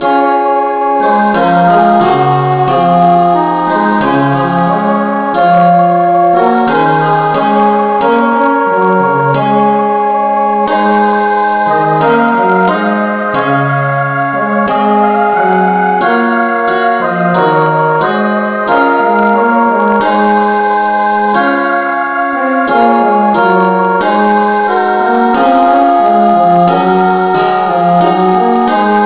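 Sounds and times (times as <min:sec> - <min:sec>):
instrumental hymn with reverb: 0:00.0 - 0:29.0.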